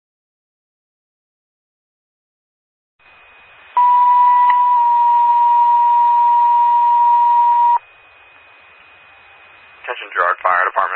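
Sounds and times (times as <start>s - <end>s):
fire department pager cancellation tone: 3.8s - 7.8s.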